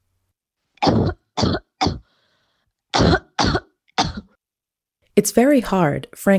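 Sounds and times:
symptomatic COVID-19 positive person coughing: 0.8s - 2.1s, 2.9s - 4.4s
speech: 5.2s - 6.3s.

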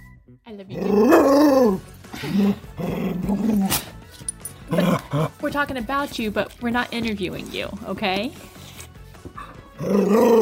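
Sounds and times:
speech: 0.3s - 1.0s, 1.7s - 3.8s, 5.5s - 8.5s, 9.8s - 10.3s
female dog growling and grumbling: 0.7s - 3.9s, 4.7s - 5.4s, 8.6s - 10.3s.

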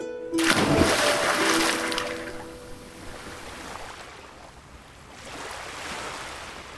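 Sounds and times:
person jumping into the sea with a loud splash: 0.4s - 3.6s
rushing ocean waves: 0.4s - 6.7s.

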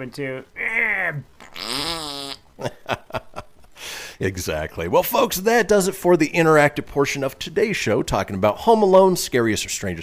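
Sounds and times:
speech: 0.0s - 3.2s, 4.2s - 10.0s
cartoonish fart sound effect: 1.4s - 2.5s.

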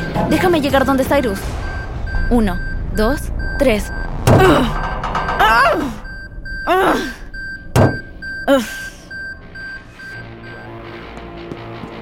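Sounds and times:
speech: 0.2s - 1.7s, 2.3s - 4.8s, 5.5s - 6.0s, 6.7s - 7.1s, 8.5s - 8.8s
door with weakened hinges thudding as it is forced open: 4.2s - 6.3s, 7.6s - 8.1s.

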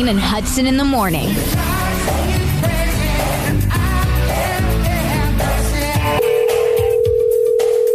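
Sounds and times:
speech: 0.0s - 2.2s
music: 0.0s - 7.9s
electronic telephone ringing tone of an outgoing call: 6.2s - 7.9s.

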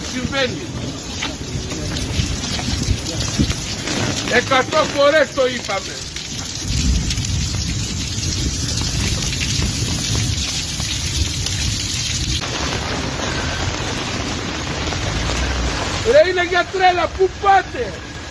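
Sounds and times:
low rumbling thunder: 0.0s - 16.1s
heavy rain pouring: 0.0s - 18.2s
speech: 0.2s - 1.1s, 4.3s - 6.1s, 16.0s - 18.1s.

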